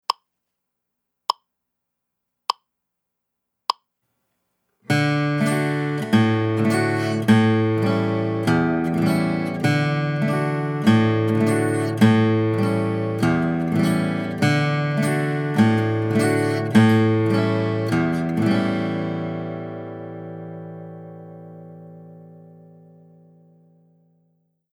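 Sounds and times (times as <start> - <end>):
alternating bass strum on D and A7 chords: 4.9 - 23.8.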